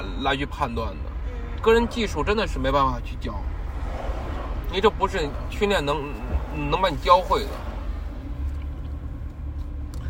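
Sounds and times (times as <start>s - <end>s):
cars stuck in a traffic jam on a road near schools at afternoon dismissal: 0.0s - 10.0s
speech: 0.2s - 3.6s, 4.7s - 7.7s.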